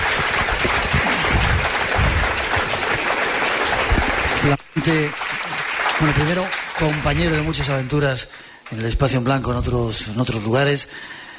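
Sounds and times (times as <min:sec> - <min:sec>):
sustained applause from a large audience: 0:00.0 - 0:08.2
speech: 0:04.4 - 0:05.3, 0:06.0 - 0:11.2.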